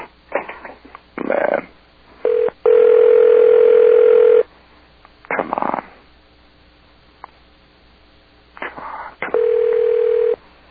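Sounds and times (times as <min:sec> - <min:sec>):
telephone dial tone: 0:02.3 - 0:04.4, 0:09.3 - 0:10.4.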